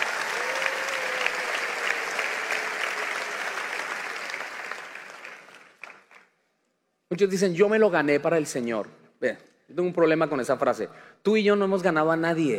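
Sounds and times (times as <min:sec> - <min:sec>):
audience applauding: 0:00.0 - 0:06.3
speech: 0:07.1 - 0:12.5.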